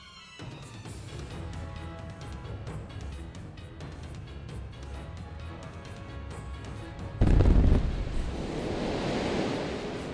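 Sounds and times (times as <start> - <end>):
TNT explosion of a warehouse in a video game: 7.2 - 10.1.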